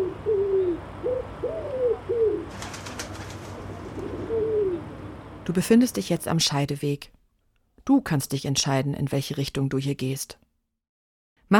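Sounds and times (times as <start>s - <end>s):
pigeons cooing by a stone monument: 0.0s - 5.2s
speech: 5.5s - 7.2s, 7.9s - 10.4s.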